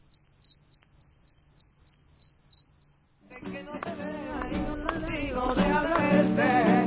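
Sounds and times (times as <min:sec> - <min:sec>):
crickets chirping on an evening city street in Jerez de la Frontera: 0:00.0 - 0:06.0.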